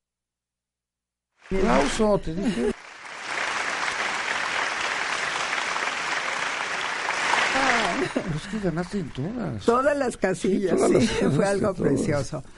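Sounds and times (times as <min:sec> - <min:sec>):
group clapping: 0:01.4 - 0:10.0
speech: 0:01.5 - 0:02.7, 0:08.3 - 0:12.5
laughter: 0:01.6 - 0:02.8, 0:07.2 - 0:11.8.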